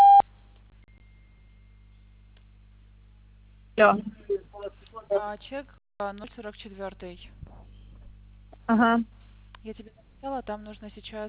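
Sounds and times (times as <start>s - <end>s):
voicemail beep signalling start of message recording: 0.0s - 0.2s
low mains hum: 0.0s - 11.2s
speech: 3.8s - 4.3s, 5.1s - 7.4s, 8.7s - 11.2s.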